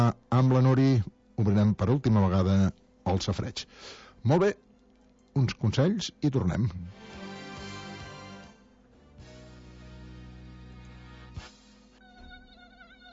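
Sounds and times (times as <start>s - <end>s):
speech: 0.0s - 4.6s, 5.4s - 7.2s
tiger mosquito buzzing while hovering: 6.9s - 13.1s.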